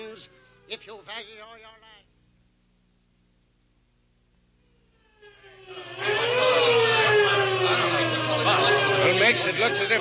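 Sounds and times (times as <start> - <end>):
police squad car siren wailing: 0.0 - 1.0, 4.6 - 10.0
speech: 0.2 - 2.0, 9.3 - 10.0
police squad car engine revving: 5.0 - 10.0.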